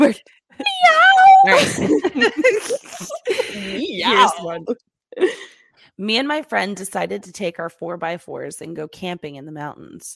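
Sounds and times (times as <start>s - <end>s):
speech: 0.0s - 10.1s
laughter: 0.6s - 5.5s
cat crying: 4.0s - 4.5s.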